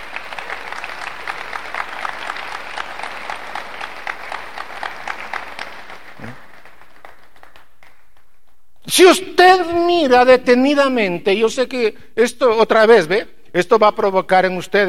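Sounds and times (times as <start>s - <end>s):
crowd clapping: 0.0s - 8.6s
speech: 8.9s - 14.8s.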